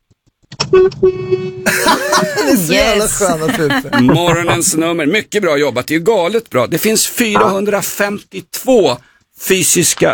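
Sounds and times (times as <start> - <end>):
truck horn honking: 0.7 - 1.6
speech: 0.7 - 10.1
laughter: 1.7 - 4.8
broadband noise burst: 7.4 - 7.6.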